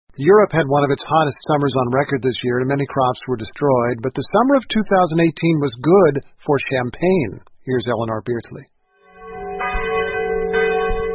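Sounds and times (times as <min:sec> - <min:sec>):
speech: 0:00.2 - 0:08.7
abbey church bells tolling in the Champagne region of France: 0:09.1 - 0:11.1.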